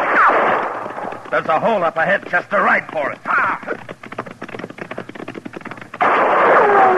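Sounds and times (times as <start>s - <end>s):
gunshots fired at riders: 0.0s - 2.0s, 6.0s - 6.9s
speech: 1.3s - 3.9s.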